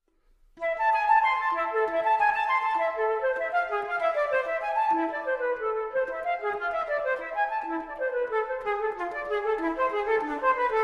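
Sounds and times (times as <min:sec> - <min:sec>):
solo flute allemande: 0:00.6 - 0:10.8.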